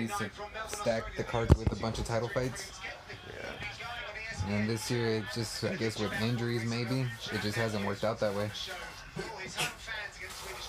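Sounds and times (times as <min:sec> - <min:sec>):
speech: 0:00.0 - 0:10.1
person sneezing: 0:09.2 - 0:09.8.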